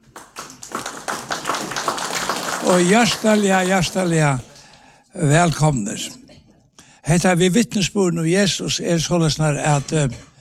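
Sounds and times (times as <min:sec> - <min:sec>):
audience applause and clapping: 0:00.0 - 0:04.8
speech: 0:02.7 - 0:04.5, 0:05.2 - 0:06.2, 0:07.1 - 0:10.3.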